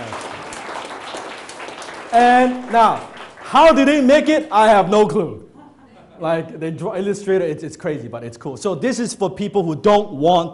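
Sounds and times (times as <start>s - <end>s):
crowd applauding: 0.0s - 4.3s
speech: 2.1s - 5.5s, 6.2s - 10.5s
laughter: 5.5s - 6.6s.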